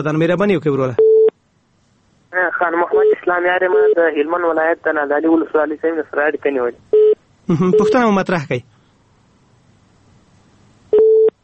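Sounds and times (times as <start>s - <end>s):
speech: 0.0s - 1.0s, 2.3s - 6.9s, 7.5s - 8.7s
telephone busy signal beep after call cut off: 7.0s - 8.0s, 10.9s - 11.4s.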